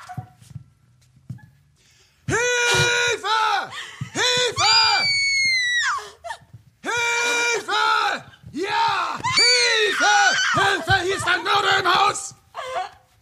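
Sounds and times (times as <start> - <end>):
person screaming: 2.3 - 6.0, 6.8 - 12.9.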